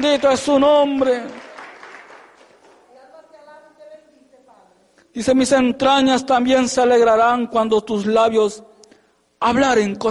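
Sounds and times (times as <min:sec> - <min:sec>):
speech: 0:00.0 - 0:01.4, 0:05.2 - 0:08.7, 0:09.4 - 0:10.0
audience applauding: 0:00.0 - 0:02.9.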